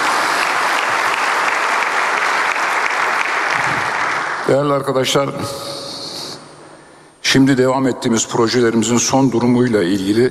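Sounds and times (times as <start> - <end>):
audience applause in support of a sports club's athletes: 0.0 - 4.5
speech: 4.5 - 5.8, 7.3 - 10.2.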